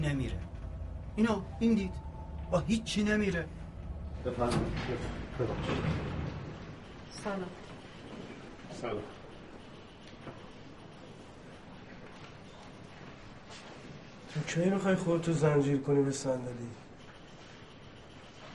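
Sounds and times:
speech: 0.0s - 0.6s, 1.2s - 3.6s, 4.2s - 6.2s, 7.1s - 7.6s, 8.8s - 9.2s, 14.3s - 16.8s
train rumbling along rails: 0.0s - 8.4s.

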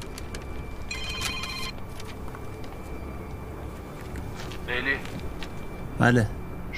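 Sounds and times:
telephone ringing in short electronic bursts: 0.0s - 3.1s
steady hum: 0.0s - 6.7s
speech: 4.7s - 5.2s, 6.0s - 6.4s.

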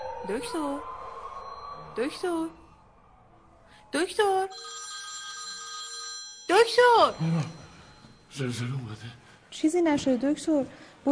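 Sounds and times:
speech: 0.2s - 0.9s, 2.0s - 2.6s, 3.9s - 4.9s, 6.5s - 7.6s, 8.3s - 11.1s
mobile phone ringing with a bright electronic tone: 4.5s - 8.4s.

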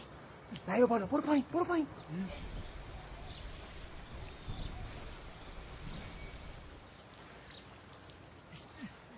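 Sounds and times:
speech: 0.7s - 2.5s
children splashing and playing in water: 3.5s - 9.1s.

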